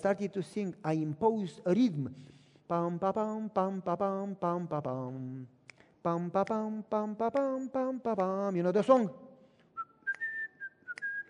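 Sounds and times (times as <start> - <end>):
speech: 0.0 - 9.2
person whistling a short tune: 9.7 - 11.2.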